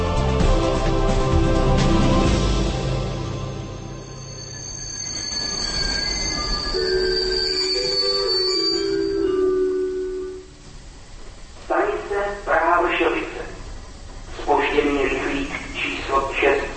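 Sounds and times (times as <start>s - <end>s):
train rolling slowly through a station: 0.0s - 16.7s
train wheels letting out high-pitched metallic squeals: 3.8s - 9.3s.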